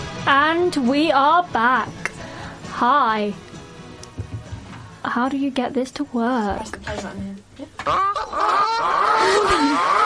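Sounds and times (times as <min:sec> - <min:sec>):
speech: 0:00.2 - 0:02.1, 0:02.8 - 0:03.5, 0:05.0 - 0:10.0
goose squawking with harsh honks and raspy calls: 0:07.8 - 0:10.0.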